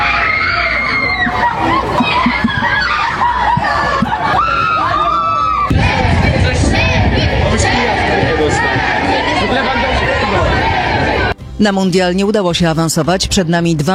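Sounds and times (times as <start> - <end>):
dense crowd of football fans shouting and screaming in Wrocław, Poland: 0.0 - 11.4
laughter: 0.6 - 5.7
speech: 11.6 - 13.9.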